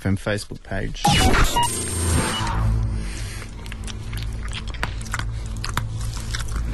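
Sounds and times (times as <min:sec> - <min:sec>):
speech: 0:00.0 - 0:02.4
person in a mask crunching and chewing hard mints: 0:03.1 - 0:06.7
loud bite into a hard mint: 0:03.2 - 0:06.7.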